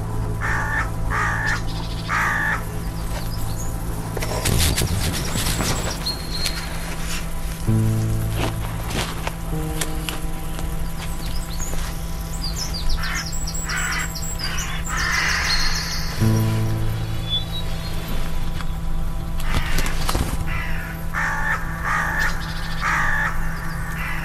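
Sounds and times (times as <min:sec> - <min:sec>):
low mechanical hum: 0:00.0 - 0:24.2
crow cawing: 0:00.4 - 0:02.6, 0:13.0 - 0:16.2, 0:19.4 - 0:24.2.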